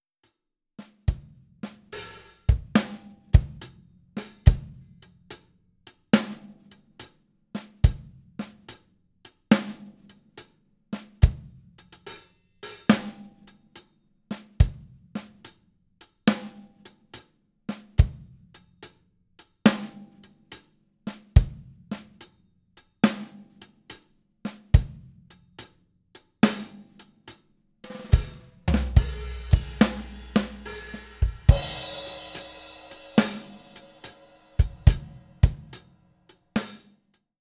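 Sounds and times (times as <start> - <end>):
half time shuffle drum groove: 1.1 - 8.8, 11.0 - 13.4, 14.4 - 15.6, 17.7 - 18.9, 19.7 - 22.4, 23.0 - 25.7, 26.4 - 36.9.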